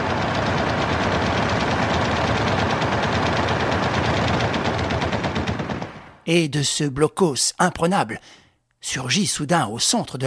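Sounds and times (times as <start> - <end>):
two machine guns firing in a street fight: 0.0 - 6.2
speech: 6.3 - 10.2.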